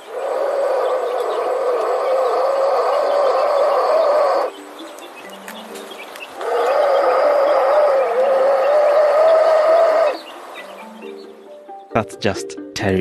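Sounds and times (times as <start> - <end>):
black mamba hissing: 0.0 - 4.5, 6.4 - 10.2
speech: 12.1 - 12.9.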